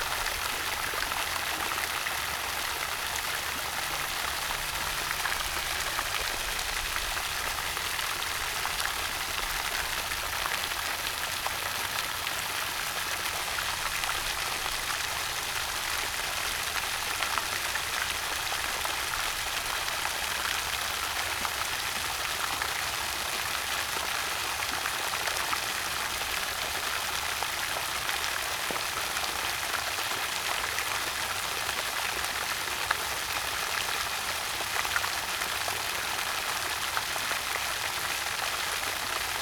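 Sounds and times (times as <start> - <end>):
water gushing from a spring: 0.0 - 39.4.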